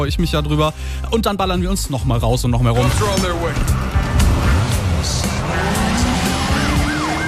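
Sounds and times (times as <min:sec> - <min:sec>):
speech: 0:00.0 - 0:04.0
video game car engine revving: 0:02.8 - 0:07.2
video game car tires squealing: 0:02.8 - 0:07.2.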